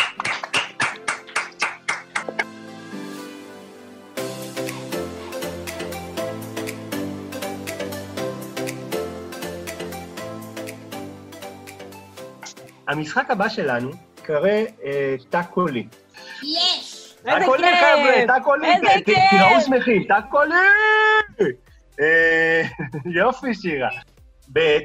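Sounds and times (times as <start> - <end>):
crisp hand claps: 0.0 - 2.6
upbeat music track: 0.0 - 24.8
speech: 12.9 - 16.6, 17.3 - 24.8
laughter: 18.8 - 20.3, 22.4 - 23.1.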